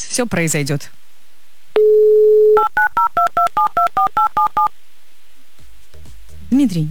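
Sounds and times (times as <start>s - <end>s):
speech: 0.2s - 1.0s, 1.8s - 4.8s, 6.6s - 6.8s
telephone touch-tone keypad beeps: 1.8s - 4.7s.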